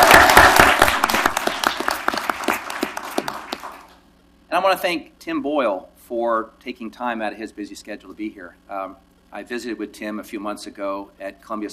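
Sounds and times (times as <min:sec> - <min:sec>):
audience applause: 0:00.0 - 0:04.0
speech: 0:04.6 - 0:11.7.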